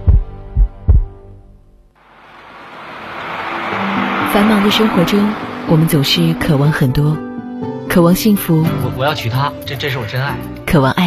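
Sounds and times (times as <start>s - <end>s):
deep booming heartbeat sound effect thumps: 0.0s - 1.3s
steady broadband rushing wash: 2.0s - 7.6s
speech: 4.4s - 7.3s, 7.9s - 11.0s.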